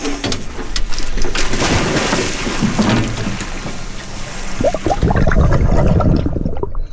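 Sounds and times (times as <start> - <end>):
dive team splashing overboard from a research boat into the sea: 1.4 - 6.5.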